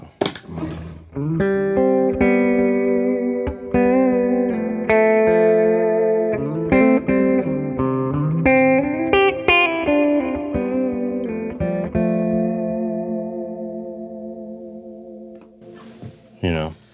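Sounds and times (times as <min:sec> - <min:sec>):
electric guitar ringing through a delay and reverb pedal: 0:00.4 - 0:16.9.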